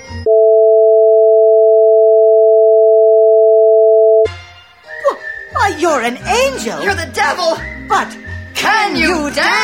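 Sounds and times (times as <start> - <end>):
steady pure electronic tone of two sine pitches: 0.2 - 4.2
speech: 5.8 - 9.6.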